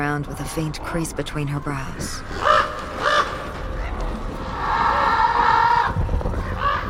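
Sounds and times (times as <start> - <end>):
speech: 0.2 - 3.1
flock of crows cawing harshly in a graveyard: 2.3 - 3.6, 4.5 - 6.8.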